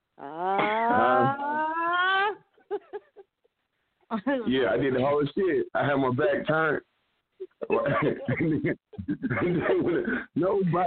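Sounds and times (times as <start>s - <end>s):
person imitating a growl: 0.2s - 1.8s
laughter: 2.2s - 3.3s, 7.5s - 10.1s
speech: 4.3s - 6.9s, 7.7s - 10.8s.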